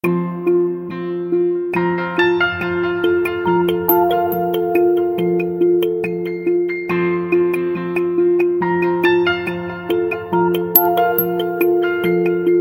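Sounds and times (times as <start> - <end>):
piano: 0.0 - 12.5.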